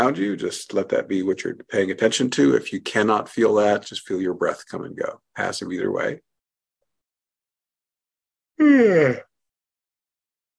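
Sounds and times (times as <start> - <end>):
speech: 0.0 - 6.3, 8.6 - 9.3
single voiced yawn with drawn-out groaning tone: 8.6 - 9.4.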